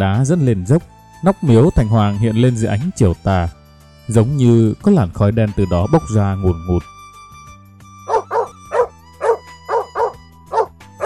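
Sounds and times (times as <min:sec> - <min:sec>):
speech: 0:00.0 - 0:07.0
dog barking by the roadside: 0:08.1 - 0:11.0.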